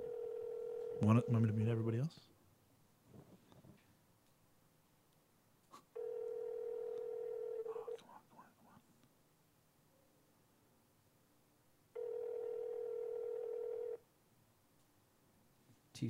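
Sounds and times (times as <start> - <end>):
ringback tones through a phone line: 0.0 - 1.6, 6.0 - 7.9, 12.0 - 14.0
speech: 1.0 - 2.3.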